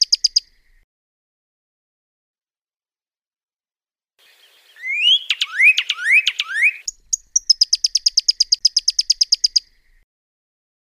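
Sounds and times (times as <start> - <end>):
pyrrhuloxia song: 0.0 - 0.8, 4.2 - 10.0.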